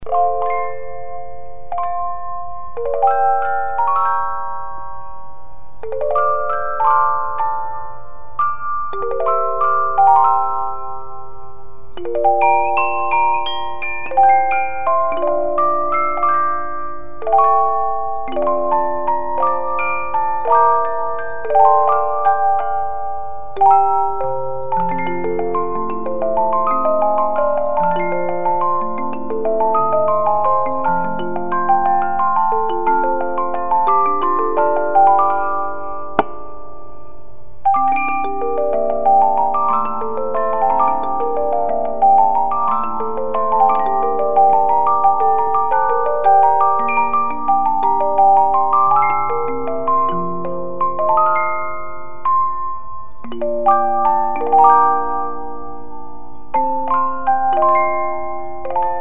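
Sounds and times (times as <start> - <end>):
50 note music box playing a piece in two parts: 0.0 - 59.0.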